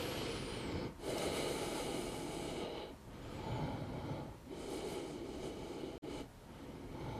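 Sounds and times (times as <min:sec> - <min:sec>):
slow deep breaths during rest: 0:00.0 - 0:07.1.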